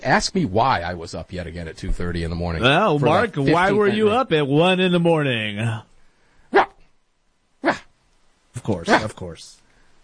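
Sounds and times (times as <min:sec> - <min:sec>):
speech: 0:00.0 - 0:05.9, 0:08.7 - 0:09.6
person imitating a small Shih Tzu's yappy bark: 0:06.5 - 0:06.8, 0:07.6 - 0:07.9, 0:08.9 - 0:09.1.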